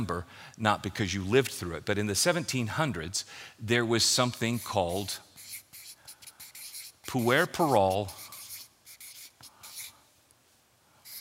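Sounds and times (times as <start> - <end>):
speech: 0.0 - 5.3, 7.1 - 8.2
pen writing words on paper: 5.4 - 9.9.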